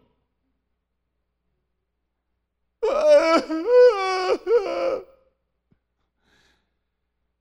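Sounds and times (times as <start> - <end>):
man moaning in pain: 2.8 - 5.0.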